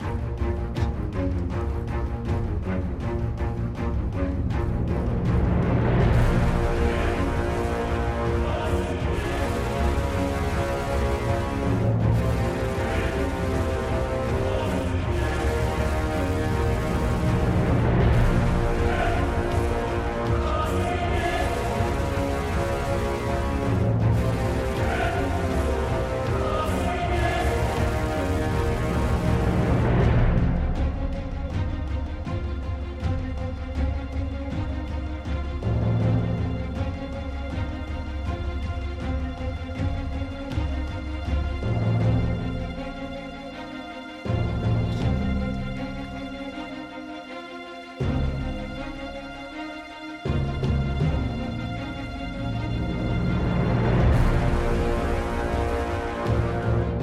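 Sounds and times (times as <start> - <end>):
dramatic war string music: 0.0 - 57.0.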